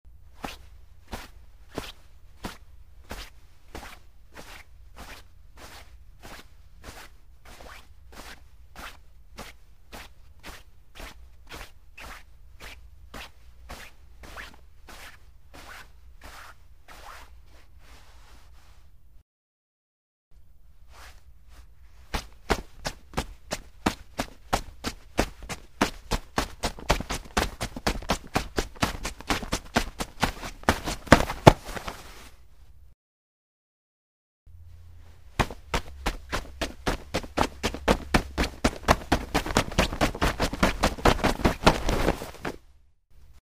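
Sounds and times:
jeans rustling while running and moving: 0.4 - 18.6, 20.8 - 32.5, 34.9 - 42.7.

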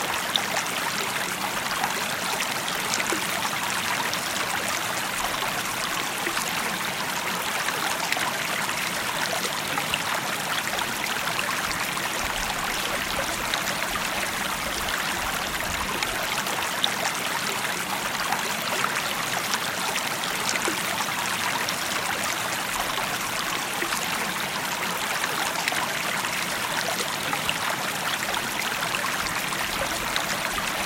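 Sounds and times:
ringing babbling brook under a small bridge: 0.0 - 30.8.

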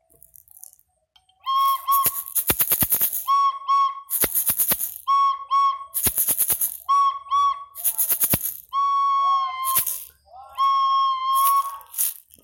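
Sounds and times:
sports fan's dull whistle blowing: 1.4 - 12.2.

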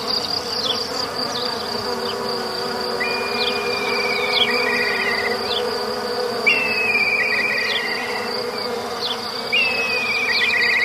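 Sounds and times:
low bee hum in a forest: 0.0 - 10.8
steady high cricket whine: 0.0 - 10.8
bright bird trills dropping in pitch: 3.0 - 5.6, 6.5 - 8.3, 9.1 - 10.8.

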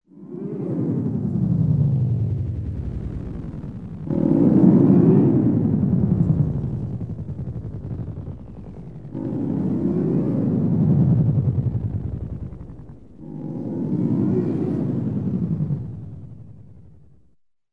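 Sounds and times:
space monster sound effect: 0.1 - 17.0.

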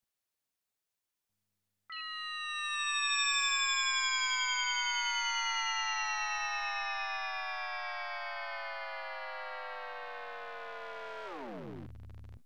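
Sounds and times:
electronic whistle of a falling bomb: 1.9 - 12.3.

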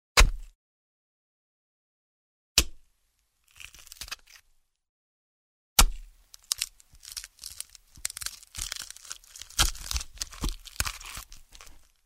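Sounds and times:
knife stabbing a person: 0.2 - 0.5, 2.6 - 2.8, 5.8 - 6.1, 8.2 - 11.8.

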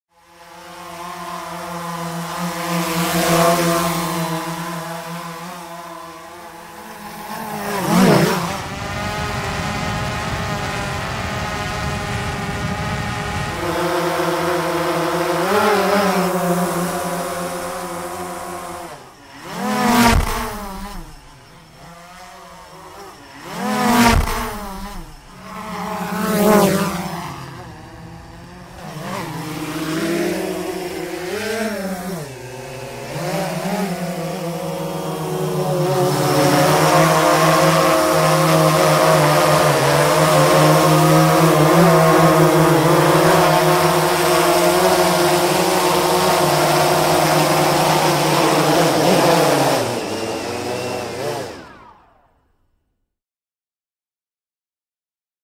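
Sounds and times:
quadcopter drone flying: 0.1 - 52.7.

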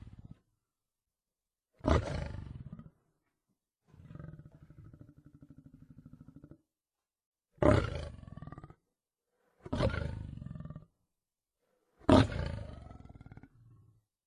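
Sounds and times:
lion roaring: 1.8 - 3.0, 4.0 - 6.6, 7.6 - 8.8, 9.6 - 10.9, 12.0 - 14.0.

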